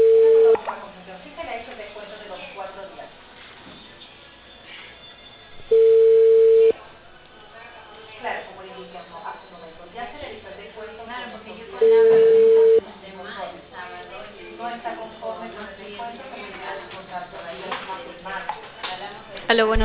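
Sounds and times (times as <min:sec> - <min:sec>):
telephone line beeps after a call is hung up: 0:00.0 - 0:00.6, 0:05.7 - 0:06.8, 0:11.8 - 0:12.8
talk over a narrow phone line: 0:11.8 - 0:12.8.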